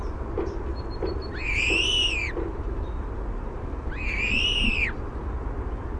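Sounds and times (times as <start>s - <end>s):
steady low rumbling background noise: 0.0s - 5.9s
European Starling male singing warbled song at a nest cavity: 1.2s - 2.4s, 3.9s - 5.0s.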